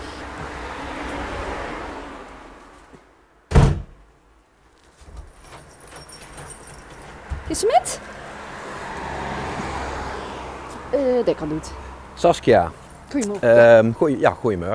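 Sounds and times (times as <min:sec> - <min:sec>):
loud thunk of door or lock: 0:03.5 - 0:04.0
keys jangling: 0:04.9 - 0:07.7
metallic clinking: 0:05.0 - 0:07.3
speech: 0:07.5 - 0:08.1, 0:11.0 - 0:14.7.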